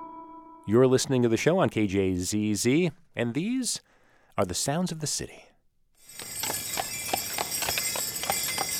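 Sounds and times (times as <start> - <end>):
speech: 0.7 - 5.5
horse hooves clip-clopping pulling a carriage around a city block: 6.0 - 8.7.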